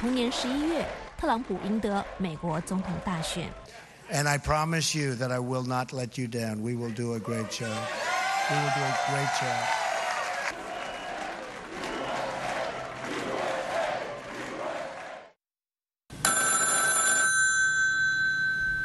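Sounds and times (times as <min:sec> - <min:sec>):
loud cheering crowd: 0:00.0 - 0:03.6, 0:07.2 - 0:15.4
speech: 0:00.0 - 0:09.8
telephone bell ringing with a bright metallic trill: 0:16.2 - 0:18.8.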